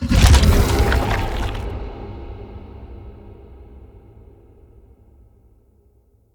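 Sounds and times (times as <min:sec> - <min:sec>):
root spike impact: 0:00.1 - 0:01.7.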